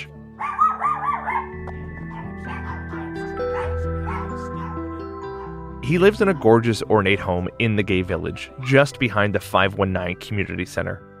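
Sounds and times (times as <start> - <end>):
several dogs in a home barking and yipping: 0.4 - 6.6
speech: 5.9 - 11.1.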